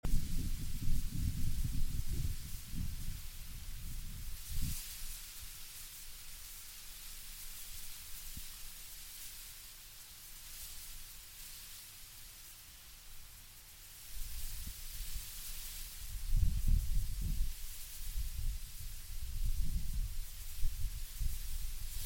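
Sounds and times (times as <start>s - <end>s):
soft wind: 0.0s - 9.4s, 13.9s - 22.0s.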